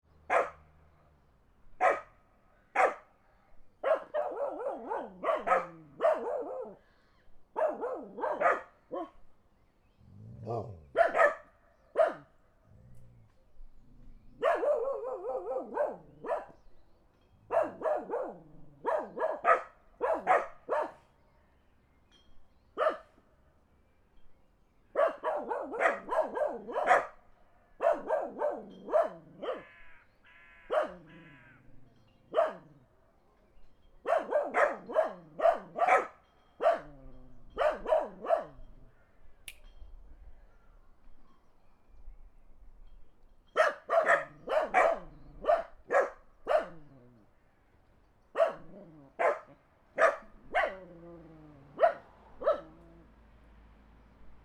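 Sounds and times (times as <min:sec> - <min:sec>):
dogs barking in the country: 0:00.3 - 0:00.7, 0:01.8 - 0:02.1, 0:02.8 - 0:03.1, 0:03.8 - 0:06.8, 0:07.6 - 0:09.2, 0:10.4 - 0:12.3, 0:14.4 - 0:16.6, 0:17.5 - 0:21.0, 0:22.8 - 0:23.2, 0:25.0 - 0:27.2, 0:27.8 - 0:29.8, 0:30.6 - 0:31.4, 0:32.3 - 0:32.8, 0:34.0 - 0:38.8, 0:43.6 - 0:47.2, 0:48.4 - 0:53.0
car passing: 0:51.2 - 0:54.4.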